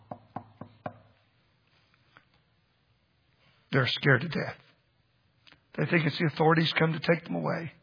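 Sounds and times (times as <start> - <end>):
firm knocking on a wooden door: 0.1 - 1.0
speech: 3.7 - 4.6, 5.8 - 7.8.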